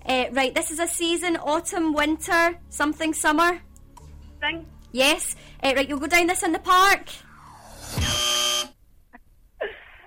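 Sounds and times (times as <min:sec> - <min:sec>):
speech: 0:00.2 - 0:03.7, 0:04.4 - 0:07.2
game-show buzzer: 0:07.5 - 0:08.8.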